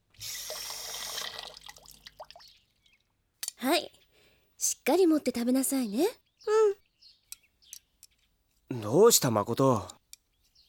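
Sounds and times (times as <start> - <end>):
water drips: 0.1 - 3.8
tap water running over dropped chopsticks being washed: 0.2 - 3.0
speech: 4.8 - 6.2, 8.8 - 10.0.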